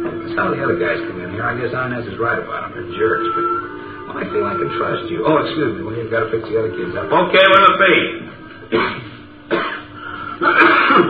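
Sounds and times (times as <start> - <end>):
speech: 0.4 - 9.0
rough raspy throat clearing: 8.7 - 11.0.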